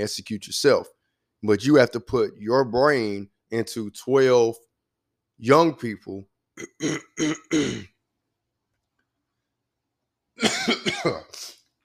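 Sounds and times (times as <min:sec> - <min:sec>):
speech: 0:00.0 - 0:04.7, 0:05.4 - 0:07.9, 0:10.4 - 0:11.5
person clearing throat while recovering from being sick: 0:06.6 - 0:08.0, 0:10.4 - 0:11.6
person coughing while recovering from being sick: 0:06.6 - 0:08.0, 0:10.4 - 0:11.5.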